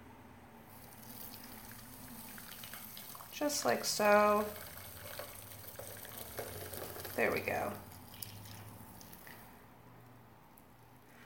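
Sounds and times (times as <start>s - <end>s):
liquid pouring through a strainer into a pot: 0.7s - 9.6s
speech: 3.4s - 4.6s, 7.2s - 7.8s.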